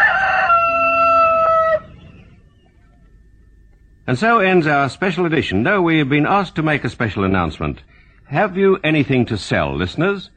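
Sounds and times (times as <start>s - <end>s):
rooster crowing: 0.0s - 2.5s
speech: 4.1s - 10.3s.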